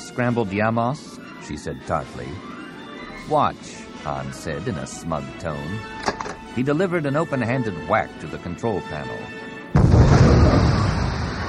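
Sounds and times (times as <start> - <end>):
speech: 0.2 - 2.6, 3.2 - 9.4
concussion missile explosion in a space dogfight: 9.8 - 11.4.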